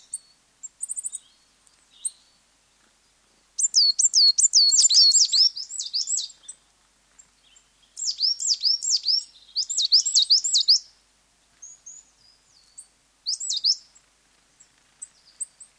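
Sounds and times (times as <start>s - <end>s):
coal tits displaying on territorial boundary: 0.0s - 2.3s, 3.6s - 6.6s, 7.2s - 10.9s, 11.6s - 15.7s.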